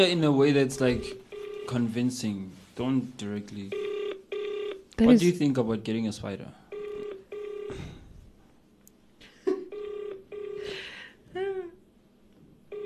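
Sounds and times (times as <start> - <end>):
speech: 0.0 - 3.9, 5.0 - 6.6
telephone tones as a phone number is dialed: 1.0 - 1.8, 3.7 - 4.8, 6.7 - 7.7, 9.7 - 10.6.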